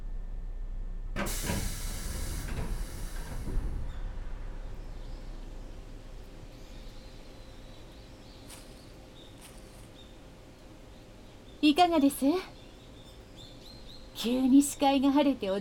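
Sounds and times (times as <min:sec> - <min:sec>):
steady rumble: 0:00.0 - 0:15.5
train door opening with pneumatic hiss at a station: 0:01.2 - 0:04.8
speech: 0:11.6 - 0:12.6, 0:14.2 - 0:15.5.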